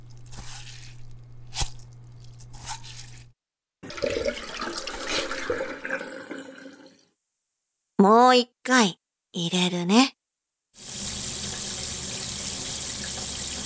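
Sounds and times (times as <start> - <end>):
something being lightly rinsed in water: 0.0 - 7.0
speech: 8.0 - 10.2.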